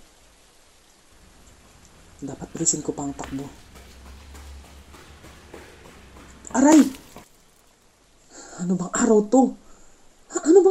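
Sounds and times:
heavy rain striking surfaces: 0.0 - 8.2
speech: 2.2 - 3.8, 8.6 - 9.6.

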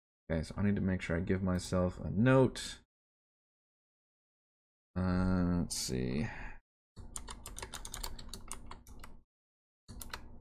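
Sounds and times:
speech: 0.3 - 2.8, 5.0 - 6.5
typing on a new clicky mechanical computer keyboard: 7.1 - 9.2, 9.9 - 10.3.

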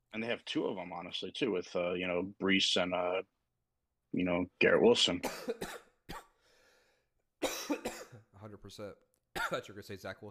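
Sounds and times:
speech: 0.2 - 3.4, 4.1 - 6.2, 8.4 - 10.3
person coughing: 5.2 - 6.4, 7.4 - 8.3, 9.4 - 9.6.

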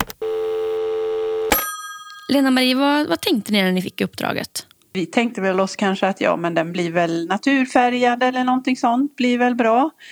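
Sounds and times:
sharp click: 0.0 - 0.2
ringback tone of an outgoing telephone call: 0.0 - 3.6
speech: 2.3 - 10.1.

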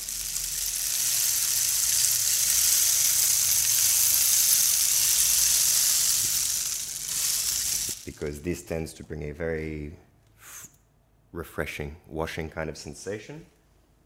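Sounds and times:
rain stick pouring pattering grains: 0.0 - 8.8
speech: 8.2 - 10.1, 11.4 - 13.6.

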